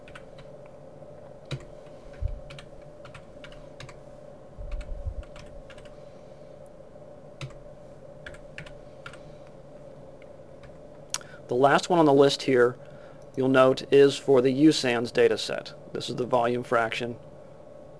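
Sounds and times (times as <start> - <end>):
typing on a computer keyboard: 0.0 - 0.5, 1.5 - 1.7, 2.5 - 4.0, 4.7 - 6.0, 7.4 - 7.6, 8.2 - 9.2
steady low hum: 0.0 - 11.6
speech: 11.5 - 17.3.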